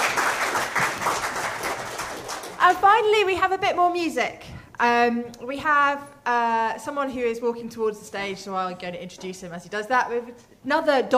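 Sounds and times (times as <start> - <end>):
audience applauding as a speaker sits down: 0.0 - 2.6
speech: 2.6 - 11.1.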